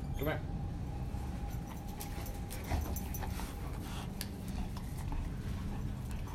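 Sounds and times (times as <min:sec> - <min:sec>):
speech: 0:00.2 - 0:00.5
dog panting: 0:01.4 - 0:06.3.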